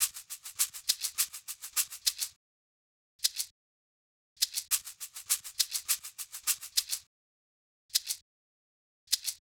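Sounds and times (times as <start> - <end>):
percussion in E minor: 0.0 - 2.4, 4.4 - 7.1, 7.9 - 8.2.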